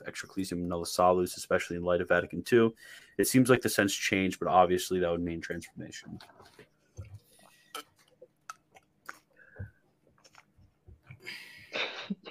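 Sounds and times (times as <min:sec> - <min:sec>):
speech: 0:00.2 - 0:06.6
person sipping a drink: 0:06.2 - 0:11.5.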